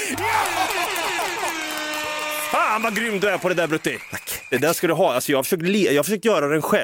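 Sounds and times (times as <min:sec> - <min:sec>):
laughter: 0:00.0 - 0:02.2
speech: 0:00.1 - 0:01.5, 0:02.5 - 0:06.8
air horn blast: 0:01.5 - 0:03.0.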